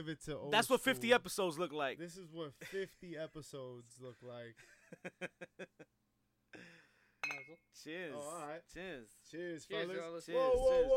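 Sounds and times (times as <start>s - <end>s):
speech: 0.0s - 10.9s
glass bottles clinking during a toast: 7.2s - 7.6s.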